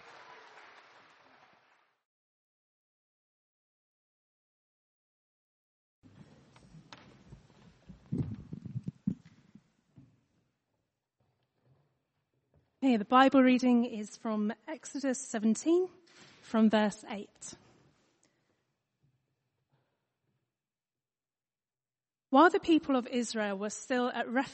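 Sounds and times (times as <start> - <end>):
applause from a gathered crowd: 0.0 - 2.0
speech: 12.8 - 17.6, 22.3 - 24.5.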